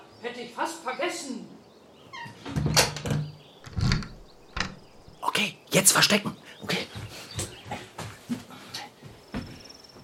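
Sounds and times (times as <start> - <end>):
speech: 0.2 - 1.6, 5.4 - 7.0
room door squeaking shut with dull knocks: 2.1 - 5.2
room door lock click: 3.6 - 5.1.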